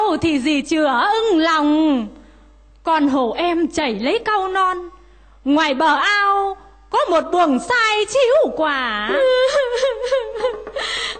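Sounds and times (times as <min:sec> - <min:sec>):
speech: 0:00.2 - 0:02.2, 0:02.8 - 0:10.6
young girl crying in wails and whimpers: 0:09.1 - 0:10.5
laughter: 0:09.1 - 0:11.1.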